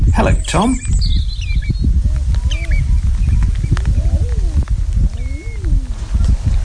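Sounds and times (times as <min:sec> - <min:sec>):
sharper calls from other birds: 0:00.0 - 0:06.3
steady low rumble of wind or surf: 0:00.0 - 0:06.6
speech: 0:00.2 - 0:01.0
eider ducks crooning and cooing: 0:02.1 - 0:06.0.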